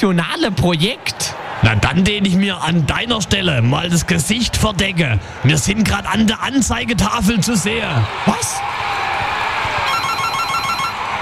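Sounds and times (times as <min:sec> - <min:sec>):
speech: 0:00.0 - 0:08.9
telephone ringing with electronic trill: 0:09.9 - 0:11.0.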